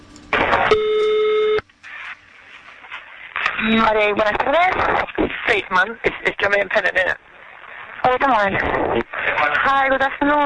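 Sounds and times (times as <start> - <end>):
single steady electronic telephone tone before call connects: 0.6 - 1.6
speech: 3.7 - 7.3, 8.0 - 10.4.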